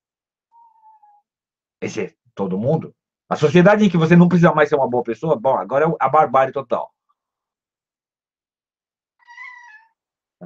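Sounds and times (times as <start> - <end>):
speech: 1.8 - 6.9
cat meowing: 9.2 - 10.0.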